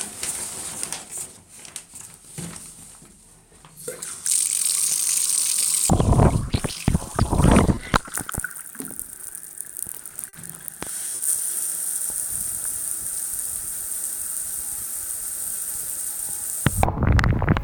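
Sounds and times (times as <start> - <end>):
shower water pouring over submerged phone microphones by the drain: 4.2 - 17.5.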